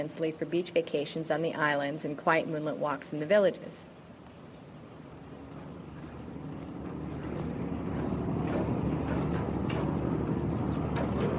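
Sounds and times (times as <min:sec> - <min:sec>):
speech: 0:00.0 - 0:04.0
wind or water noise: 0:04.7 - 0:11.3
deep engine rumble of ferries leaving port: 0:05.2 - 0:11.3.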